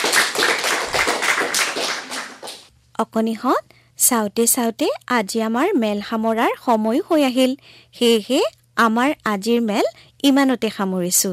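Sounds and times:
children clapping hands together as a group: 0.0s - 2.7s
speech: 3.0s - 11.3s.

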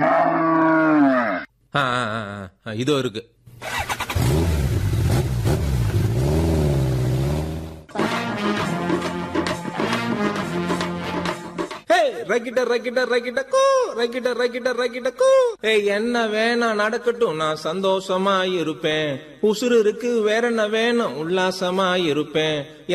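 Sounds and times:
cattle mooing in a shed: 0.0s - 1.5s
speech: 2.6s - 4.5s, 12.3s - 22.9s
motorbike engine starting and revving: 3.6s - 7.9s
music: 7.9s - 11.9s.

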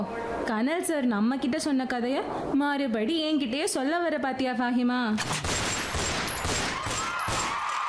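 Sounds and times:
speech: 0.0s - 5.6s
rapid burst of gunfire in an airport lobby: 5.2s - 7.7s.

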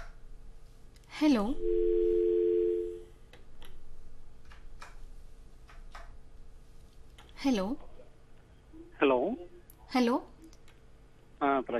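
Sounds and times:
speech: 1.2s - 2.0s, 7.4s - 7.9s, 9.0s - 10.3s, 11.4s - 11.7s
telephone dial tone after a phone call drops: 1.6s - 3.0s.

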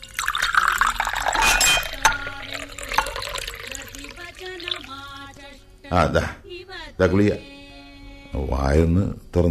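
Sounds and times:
water pouring into a drinking glass: 0.0s - 5.4s
light glass clinks: 0.2s - 3.7s
speech: 5.9s - 6.4s, 7.0s - 7.5s, 8.3s - 9.4s.

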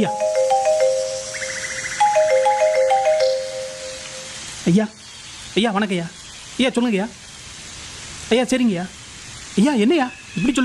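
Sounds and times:
speech: 0.0s - 0.2s, 4.7s - 5.0s, 5.6s - 7.2s, 8.3s - 9.0s, 9.6s - 10.6s
phone ringtone with a bright repeating electronic melody and warbling trill: 0.0s - 4.4s.

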